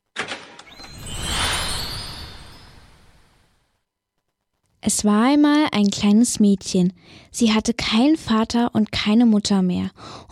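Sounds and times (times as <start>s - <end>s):
golden fairy-tale gate opening magical sound effect: 0.6s - 3.7s
speech: 4.9s - 10.2s.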